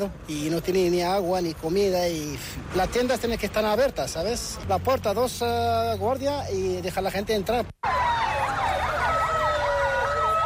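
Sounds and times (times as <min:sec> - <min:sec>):
speech: 0:00.0 - 0:08.1
police sirens wailing through city streets: 0:07.8 - 0:10.4.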